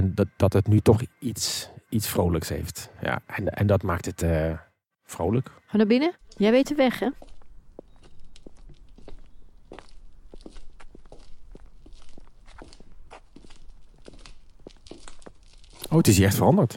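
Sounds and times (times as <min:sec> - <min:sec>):
speech: 0:00.1 - 0:07.3, 0:15.9 - 0:16.7
footsteps walking indoors toward the stairs: 0:07.1 - 0:16.0.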